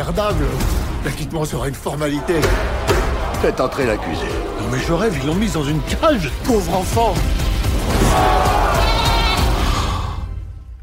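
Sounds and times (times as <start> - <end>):
speech: 0.0 - 8.6
goat bleating: 8.8 - 9.5.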